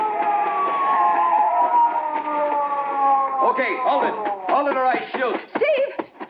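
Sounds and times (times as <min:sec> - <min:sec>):
police car siren wailing: 0:00.0 - 0:05.2
speech: 0:03.6 - 0:06.0.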